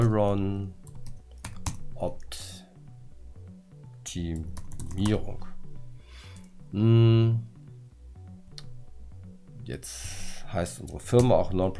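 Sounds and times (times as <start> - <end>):
speech: 0.1 - 0.8, 2.0 - 2.4, 4.1 - 5.5, 6.7 - 7.5, 9.7 - 11.7
typing on a computer keyboard to enter a project name: 0.9 - 1.8, 4.5 - 5.2.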